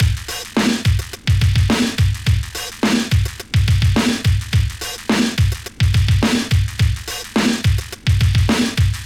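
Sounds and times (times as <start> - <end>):
hard hip hop drums: 0.0 - 9.0.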